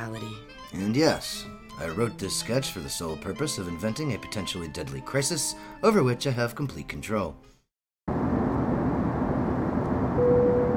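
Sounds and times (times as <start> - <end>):
speech: 0.0 - 7.5
airplane in flight losing altitude: 8.1 - 10.7.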